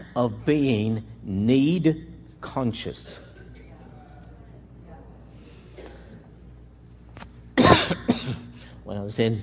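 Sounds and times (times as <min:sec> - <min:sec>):
speech: 0:00.2 - 0:03.2, 0:08.9 - 0:09.4
loud harsh cough into the microphone: 0:07.6 - 0:08.7.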